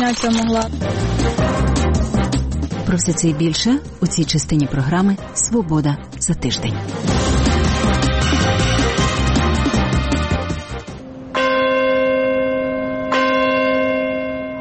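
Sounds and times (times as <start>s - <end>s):
speech: 0.0s - 1.4s, 2.9s - 7.3s
busy music: 0.0s - 11.3s
deep memorial bell tolling: 11.3s - 14.6s.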